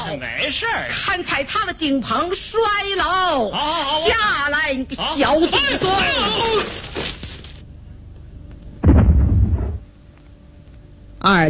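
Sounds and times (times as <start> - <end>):
speech: 0.1 - 6.9, 11.2 - 11.4
explosion inside a house, radio drama sound effect: 8.8 - 9.9.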